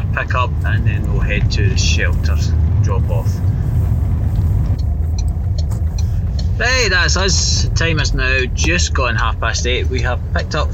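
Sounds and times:
road rumble of a car driving through Glasgow: 0.0 - 10.7
speech: 0.2 - 3.6, 6.6 - 10.7.

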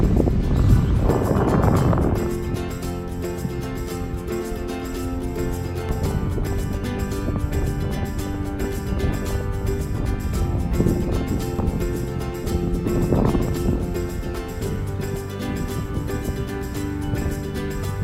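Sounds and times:
rush of outdoor air at Praia do Espelho beach: 0.0 - 18.0
wind buffeting the microphone at Praia do Espelho beach: 0.0 - 18.0.

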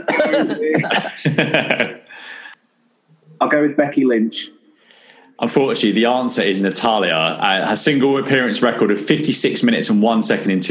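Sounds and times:
person coughing: 0.0 - 0.9
people chuckling: 0.0 - 2.5
speech: 0.2 - 2.4, 3.4 - 4.6, 5.4 - 10.6.

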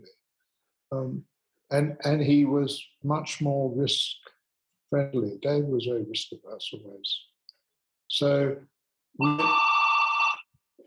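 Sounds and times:
speech: 0.9 - 4.3, 4.9 - 7.3, 8.1 - 9.7
home doorbell electronic chime: 9.2 - 10.4.

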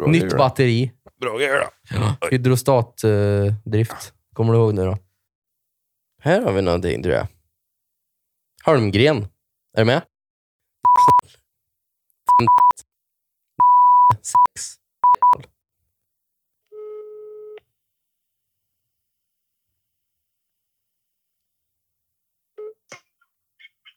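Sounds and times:
speech: 0.0 - 5.0, 6.2 - 7.4, 8.6 - 10.1, 12.4 - 12.9, 14.2 - 15.5
phone touch-tone dialing beeps: 10.9 - 11.2, 12.3 - 12.8, 13.6 - 15.4.

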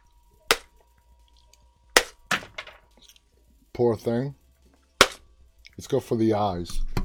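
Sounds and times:
hammer blows smashing a hard edible doll's head: 0.4 - 0.8, 1.9 - 2.7, 5.0 - 5.3
speech: 3.8 - 4.4, 5.8 - 6.9.

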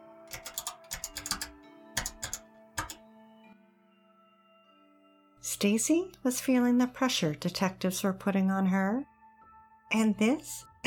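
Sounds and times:
woman typing on a computer keyboard heard through a phone wiretap: 0.3 - 3.0
speech: 5.6 - 9.1, 9.9 - 10.8.

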